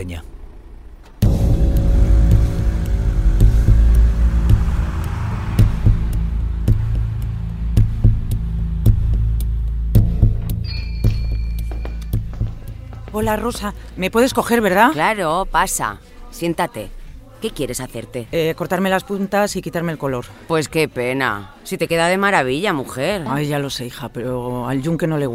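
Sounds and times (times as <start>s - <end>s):
speech: 0.0s - 0.3s, 13.2s - 25.3s
car engine starting and idling: 0.0s - 15.2s.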